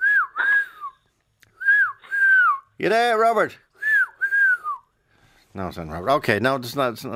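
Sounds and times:
person whistling a short sliding tune: 0.0 - 2.7, 3.8 - 4.9
speech: 2.8 - 3.7, 5.6 - 7.1.

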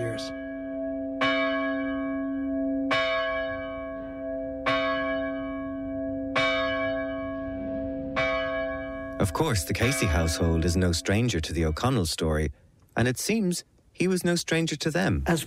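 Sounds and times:
church bell recast in 1940 tolling: 0.0 - 12.1
speech: 9.2 - 15.4.

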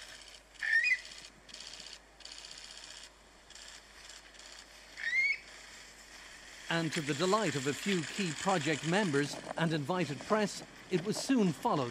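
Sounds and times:
bursts of broadband noise: 0.0 - 11.8
steady hiss: 1.5 - 11.8
Eurasian Curlew flight call: 5.0 - 5.4
speech: 6.7 - 11.8.

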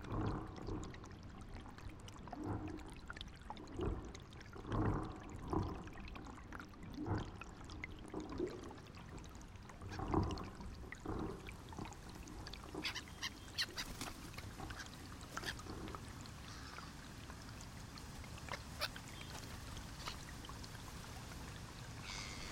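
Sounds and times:
underwater swirling water: 0.0 - 22.5
flock of whooper swans calling at a loch: 12.7 - 17.2, 18.4 - 20.4.

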